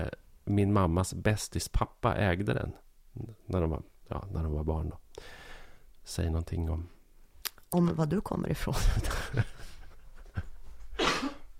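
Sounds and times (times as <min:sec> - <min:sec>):
speech: 0:00.0 - 0:05.4, 0:06.1 - 0:07.0, 0:07.7 - 0:09.6
person having a coughing fit: 0:11.0 - 0:11.5.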